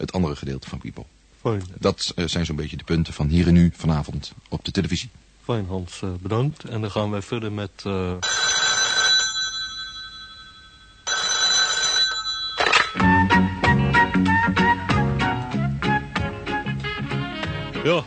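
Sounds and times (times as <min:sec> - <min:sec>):
speech: 0:00.0 - 0:08.8
telephone ringing in bright electronic bursts: 0:08.2 - 0:13.2
lively music: 0:13.0 - 0:18.0.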